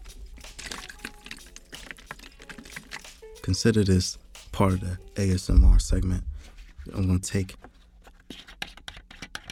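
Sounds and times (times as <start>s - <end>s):
water being poured: 0.0s - 3.2s
speech: 3.4s - 6.3s, 6.9s - 7.6s.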